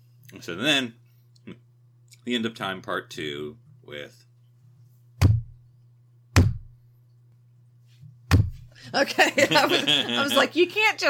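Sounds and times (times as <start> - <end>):
faint steady low hum: 0.0 - 11.0
speech: 0.3 - 1.6, 2.3 - 4.3, 8.9 - 11.0
firm knocks on a hard surface: 5.2 - 5.6, 6.4 - 6.7, 8.3 - 8.7
laughter: 9.0 - 10.7.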